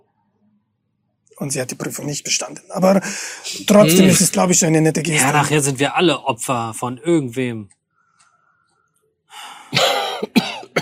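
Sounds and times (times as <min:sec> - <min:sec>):
speech: 0:01.4 - 0:07.8
breathy intake of breath: 0:03.0 - 0:03.7, 0:09.3 - 0:09.9
person coughing: 0:09.7 - 0:10.8.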